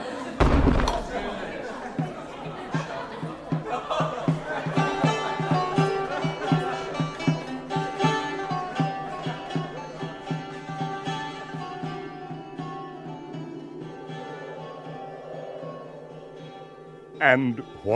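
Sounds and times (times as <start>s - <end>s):
people laughing in an echoing hall: 0.0s - 10.2s
murmur of voices in an echoing hall: 0.0s - 17.9s
heavy hall door slamming shut: 0.4s - 1.8s
speech: 17.2s - 17.9s.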